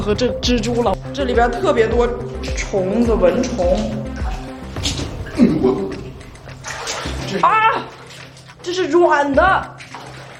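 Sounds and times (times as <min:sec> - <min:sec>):
speech: 0:00.0 - 0:04.0, 0:05.4 - 0:06.0, 0:07.3 - 0:07.9, 0:08.7 - 0:09.8
faint watery background: 0:00.0 - 0:10.3
water drip plinking into a pool: 0:02.5 - 0:10.3.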